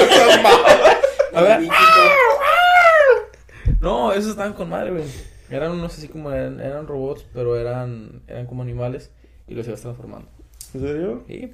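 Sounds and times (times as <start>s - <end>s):
laughter: 0.0s - 3.3s
speech: 1.4s - 2.0s, 4.2s - 11.5s
cat meowing: 1.7s - 3.2s.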